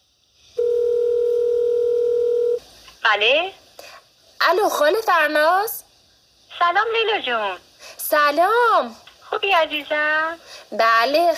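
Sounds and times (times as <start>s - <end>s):
telephone dial tone: 0.6s - 2.6s
speech: 3.1s - 3.6s, 4.4s - 5.8s, 6.6s - 11.3s.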